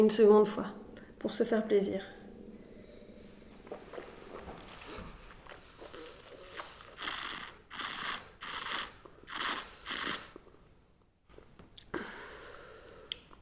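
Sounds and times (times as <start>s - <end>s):
speech: 0.0s - 2.2s
wine being sipped: 3.5s - 10.5s.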